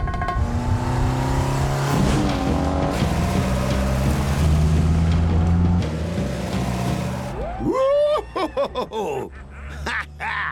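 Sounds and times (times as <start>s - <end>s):
classic British Sunbeam Alpine sports car engine on a test drive: 0.2s - 7.4s
laughter: 7.6s - 10.5s.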